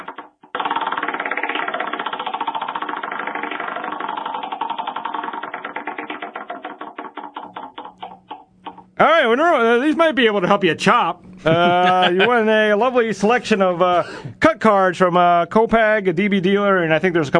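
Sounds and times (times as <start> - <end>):
prize wheel spinning and clicking at a poker tournament: 0.0 - 10.0
speech: 9.0 - 17.3
laughter: 11.4 - 13.1.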